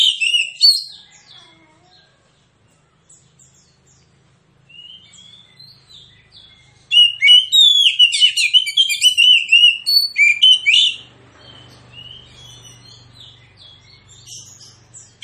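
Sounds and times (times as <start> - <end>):
magpie-robin song: 0.0 - 1.2, 4.7 - 15.2.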